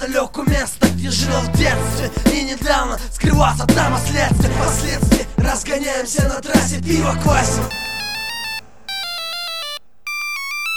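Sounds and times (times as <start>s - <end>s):
speech: 0.0s - 7.9s
phone ringing with an electronic ringtone: 7.7s - 10.7s.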